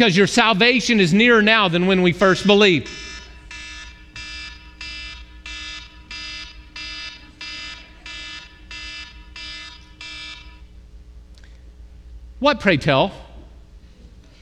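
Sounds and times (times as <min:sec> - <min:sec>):
speech: 0:00.0 - 0:03.1, 0:12.4 - 0:13.2
low hum: 0:00.0 - 0:14.4
electronic alarm beeping: 0:01.4 - 0:10.7.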